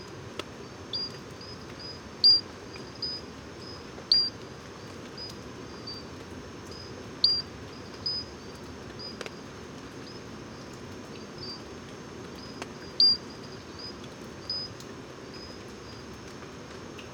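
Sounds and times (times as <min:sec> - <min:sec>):
low steady hiss: 0:00.0 - 0:17.1
Pinchon's robber frog calling with high clear chirps in Guadeloupe forest: 0:00.9 - 0:04.4, 0:05.1 - 0:06.1, 0:06.7 - 0:09.2, 0:10.0 - 0:11.7, 0:12.4 - 0:16.0.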